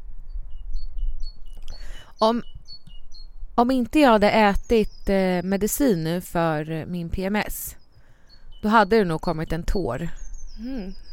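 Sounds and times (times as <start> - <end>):
birds chirping outdoors: 0.4 - 11.1
speech: 2.2 - 2.6, 3.6 - 7.8, 8.6 - 11.0
brief human vocal sound: 10.6 - 11.0.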